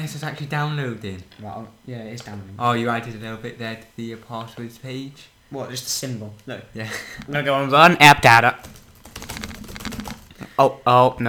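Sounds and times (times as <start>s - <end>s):
speech: 0.0s - 8.8s, 10.6s - 11.2s
faint low hum: 0.0s - 11.2s
rapid typing on a computer keyboard: 8.6s - 10.4s.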